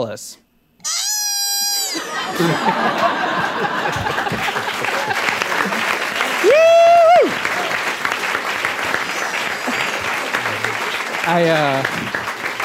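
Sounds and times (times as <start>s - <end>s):
speech: 0.0s - 1.0s, 2.3s - 7.4s, 11.2s - 12.2s
sharp whistle: 0.8s - 2.0s
scattered crowd cheers: 0.8s - 12.6s
laughter: 1.8s - 6.6s, 8.9s - 12.2s
large audience applauding: 1.9s - 12.6s.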